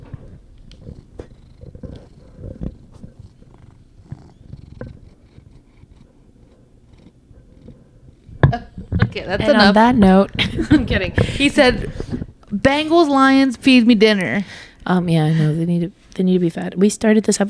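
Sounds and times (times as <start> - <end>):
cat purring against a microphone: 0.0 - 12.4
speech: 9.2 - 17.4.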